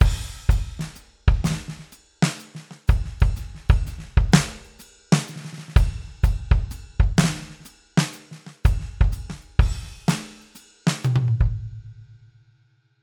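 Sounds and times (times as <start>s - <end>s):
straight jazz drum groove: 0.0s - 11.9s.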